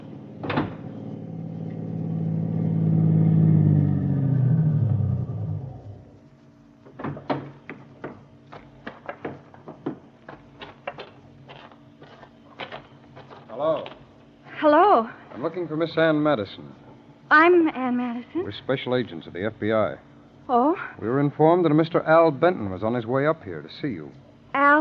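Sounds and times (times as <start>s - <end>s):
car engine driving up and stopping: 0.0s - 6.3s
clicks and knocks as the car settles: 6.8s - 13.4s
speech: 15.4s - 24.7s.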